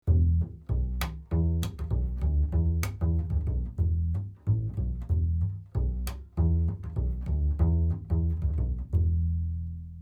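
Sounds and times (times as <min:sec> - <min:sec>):
upright bass: 0:00.0 - 0:10.0.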